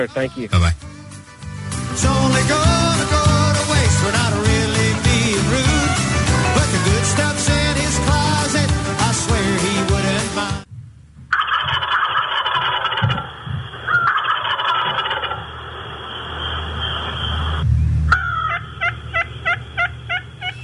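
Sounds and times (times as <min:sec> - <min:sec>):
speech: 0:00.0 - 0:00.9, 0:02.0 - 0:02.8
music: 0:00.0 - 0:10.7
turkey gobbling: 0:11.3 - 0:17.1, 0:18.1 - 0:20.6.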